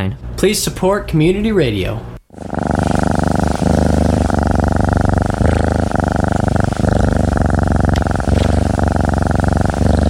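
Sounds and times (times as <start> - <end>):
speech: 0.0 - 2.6
healthy contented cat purring loudly: 2.3 - 10.0.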